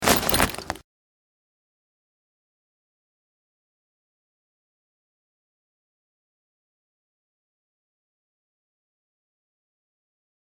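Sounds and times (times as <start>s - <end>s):
corpse being opened: 0.0s - 0.8s.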